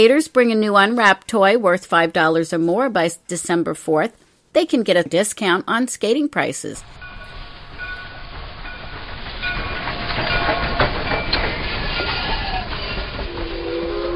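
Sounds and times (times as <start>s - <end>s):
speech: 0.0s - 7.0s
train rolling on rails, clickety-clack: 6.8s - 14.1s.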